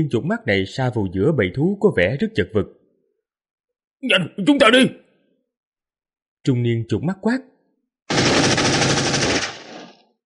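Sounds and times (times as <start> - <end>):
speech: 0.0 - 2.8, 4.0 - 5.0, 6.4 - 7.5
machine gun firing rapid burst at surrounding beasts: 8.1 - 10.1.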